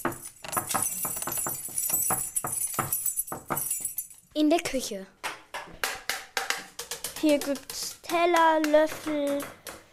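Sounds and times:
bunch of keys jangling at an apartment door: 0.0s - 4.3s
speech: 4.4s - 5.2s, 7.2s - 9.6s.

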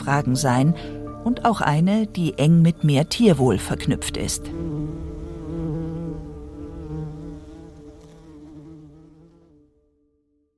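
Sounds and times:
speech: 0.0s - 5.0s
bumblebee buzzing: 4.3s - 9.6s.

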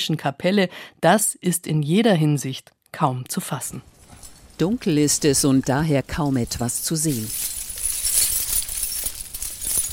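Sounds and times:
speech: 0.0s - 3.9s, 4.6s - 7.5s
large bunch of keys jangling: 7.0s - 9.9s.

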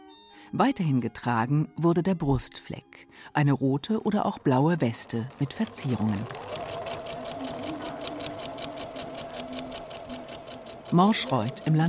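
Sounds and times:
speech: 0.5s - 6.8s, 10.9s - 11.8s
several sewing machines running: 3.9s - 11.8s.

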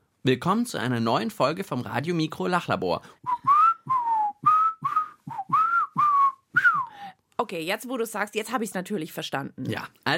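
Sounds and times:
speech: 0.2s - 3.5s, 7.4s - 10.1s
person whistling a short greeting tune: 3.2s - 7.0s.

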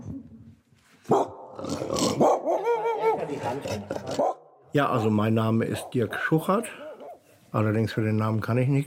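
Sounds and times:
dog barking at a home in Planegg near Munich: 1.1s - 1.5s, 2.1s - 3.2s, 4.1s - 4.4s, 6.8s - 7.2s
speech: 4.7s - 6.8s, 7.5s - 8.8s.

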